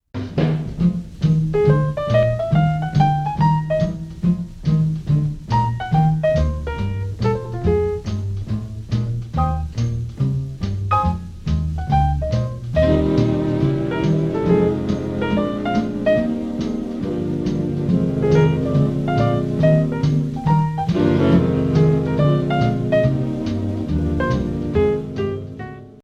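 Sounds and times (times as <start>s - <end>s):
improvised music: 0.0s - 26.0s.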